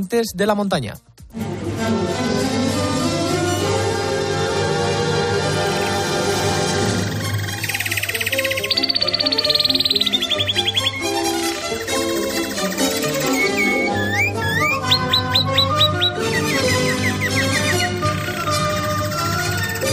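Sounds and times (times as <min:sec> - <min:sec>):
speech: 0:00.0 - 0:02.2
steady musical bed: 0:00.0 - 0:19.9
bird chirps and trills: 0:05.5 - 0:19.9.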